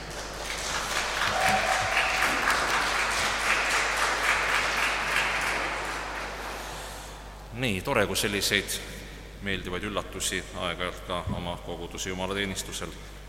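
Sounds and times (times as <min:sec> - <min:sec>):
audience applauding in a reverberant church during a service: 0:00.0 - 0:06.8
speech: 0:07.6 - 0:13.2.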